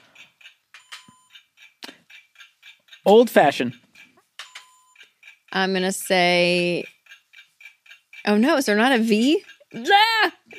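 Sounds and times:
game timer beeping in short electronic pulses: 0.1s - 1.8s, 2.4s - 10.0s
speech: 3.0s - 3.8s, 5.6s - 7.0s, 8.2s - 10.5s.

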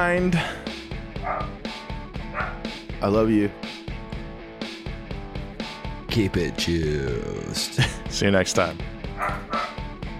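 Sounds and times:
speech: 0.0s - 0.7s, 3.0s - 3.8s, 6.1s - 9.5s
dog barking: 1.2s - 1.6s, 2.3s - 2.7s, 9.2s - 9.9s.

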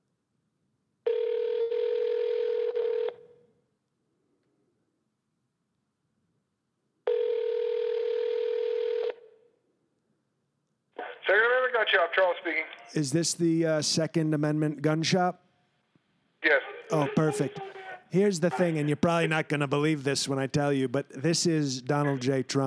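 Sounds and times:
telephone ringing through the line: 1.1s - 3.4s, 7.1s - 9.4s
speech: 12.0s - 15.4s, 16.9s - 22.6s.

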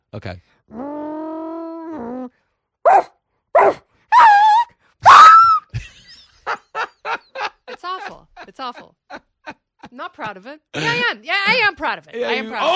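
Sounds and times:
speech: 0.1s - 1.0s, 1.9s - 3.1s, 8.5s - 9.2s, 9.9s - 12.7s
person imitating a dog hit by a car whining: 0.7s - 2.3s, 2.9s - 5.7s
person imitating a dog hit by a car yelping: 2.9s - 5.7s
laughter: 5.7s - 11.6s.

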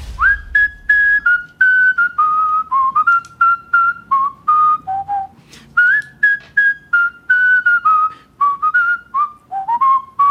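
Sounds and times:
world champion whistler whistling a clear melody: 0.0s - 10.2s.

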